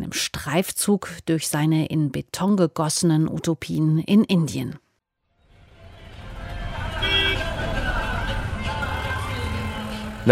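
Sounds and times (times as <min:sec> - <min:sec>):
speech: 0:00.0 - 0:04.8
dense city traffic rumbling with engine noise: 0:05.3 - 0:10.3
car horn honking: 0:06.5 - 0:09.5.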